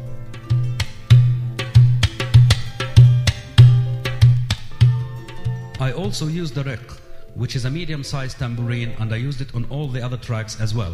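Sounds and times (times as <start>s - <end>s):
dohola bass tabla drum played in a repeating rhythmic pattern: 0.0s - 6.6s
speech: 5.8s - 10.9s.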